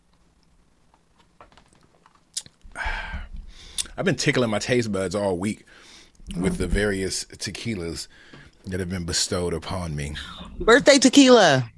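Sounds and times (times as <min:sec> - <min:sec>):
soft wet mouth clicks and smacks: 0:02.3 - 0:02.6
speech: 0:03.9 - 0:11.7.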